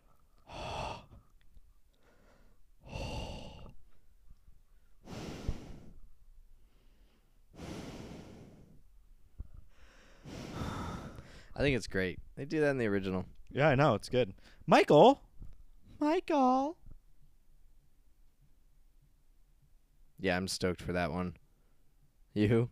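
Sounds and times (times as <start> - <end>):
voice imitating a masked killer's heavy raspy breathing: 0.0 - 1.3, 2.8 - 3.8, 5.0 - 6.0, 7.6 - 8.8, 10.2 - 11.6
speech: 11.6 - 15.2, 16.0 - 16.8, 20.2 - 21.4, 22.4 - 22.6.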